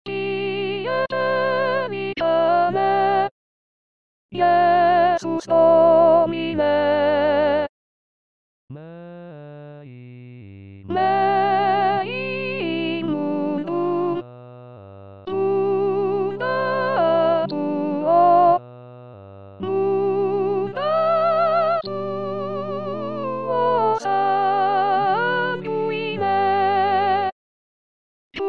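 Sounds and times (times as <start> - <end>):
soprano singing: 0.1 - 3.3, 4.4 - 7.7, 10.9 - 14.2, 15.3 - 18.6, 19.6 - 27.3.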